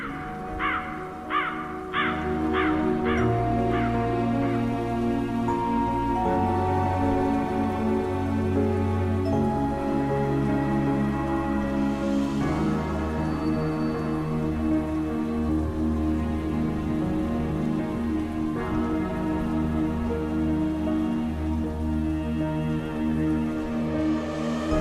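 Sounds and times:
rain falling in a steady even patter: 0.0s - 24.7s
sustained tonal drone: 0.0s - 24.7s.

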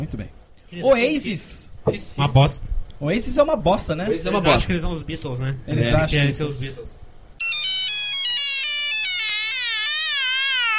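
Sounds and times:
speech: 0.0s - 7.0s
mobile phone ringing with a loud electronic melodic ringtone: 7.4s - 10.5s.

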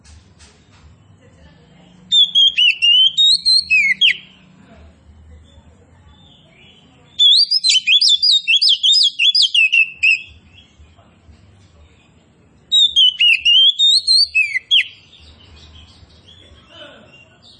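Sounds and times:
Oriental magpie-robin singing actively and loudly: 2.0s - 4.5s, 6.1s - 10.8s, 12.7s - 16.5s.

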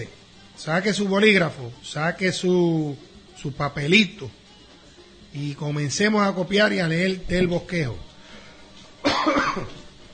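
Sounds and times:
speech: 0.0s - 4.4s, 5.3s - 8.1s, 9.2s - 9.8s
person with a terrible cold coughing: 9.0s - 9.8s.

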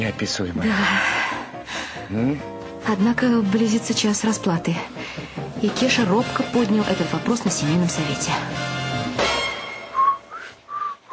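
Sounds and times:
speech: 0.0s - 1.4s, 2.1s - 8.8s
person whistling inside a house: 9.9s - 11.1s.

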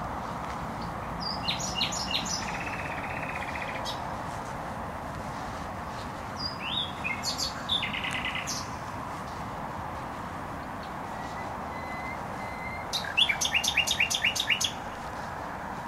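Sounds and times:
steady motorway traffic roar: 0.0s - 15.8s
nightingale singing in bushes close to a noisy motorway: 0.8s - 4.1s, 5.8s - 9.5s, 10.5s - 15.2s.

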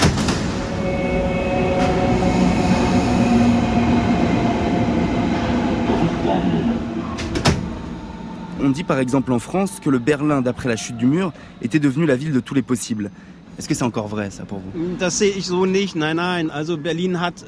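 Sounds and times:
rail cars rumbling at a Berlin railway station entrance: 0.0s - 17.4s
indistinct voices at a Berlin railway station entrance: 0.6s - 12.8s
speech: 8.7s - 17.4s.

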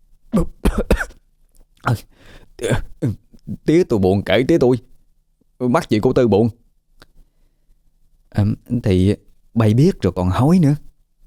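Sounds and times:
man coughing and spluttering after choking on coffee: 0.3s - 1.2s
speech: 0.4s - 0.9s, 2.7s - 4.9s, 5.6s - 6.6s, 8.4s - 10.9s.

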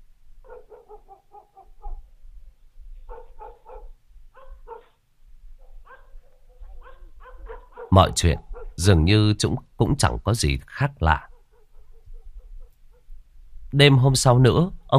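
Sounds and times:
dogs barking at night in a village: 0.4s - 2.1s, 3.0s - 5.0s, 5.6s - 8.9s, 11.2s - 13.2s
speech: 7.9s - 11.3s, 13.8s - 14.9s.

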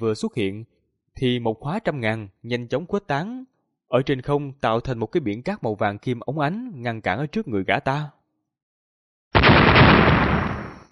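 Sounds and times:
speech: 0.0s - 8.2s
blue lightning orbs exploding against a defensive shield: 9.4s - 10.9s.

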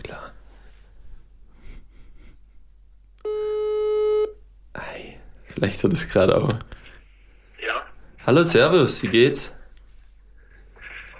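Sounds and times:
WhatsApp call ringing tone: 3.2s - 4.4s
speech: 5.6s - 6.9s, 8.3s - 9.6s.

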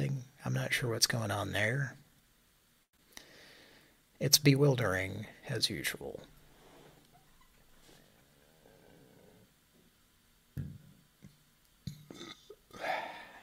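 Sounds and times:
faint noise: 0.0s - 13.4s
speech: 0.6s - 2.0s, 4.2s - 6.4s
person burping: 11.9s - 13.3s.

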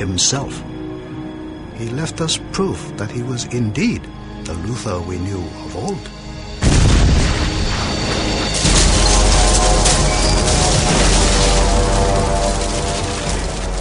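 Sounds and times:
speech: 0.0s - 0.7s, 1.8s - 6.2s
explosion of demolition charges destroying an installation: 6.6s - 13.8s.

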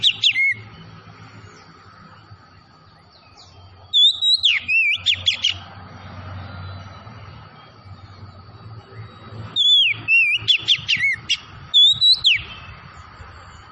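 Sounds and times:
Tretes Oriental magpie-robin singing vigorously: 0.0s - 0.8s, 3.0s - 5.6s, 8.9s - 12.8s.

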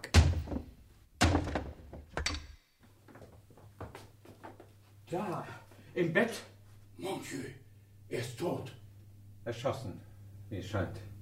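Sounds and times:
door bolted from the inside being forced open: 0.0s - 2.6s
speech: 5.1s - 8.8s, 9.4s - 11.1s.

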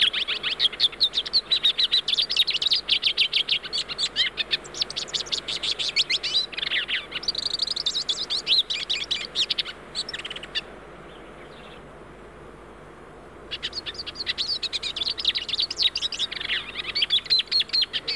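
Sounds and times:
hooded siskin Spinus magellanicus singing a twittering song: 0.0s - 11.8s, 13.5s - 18.1s.

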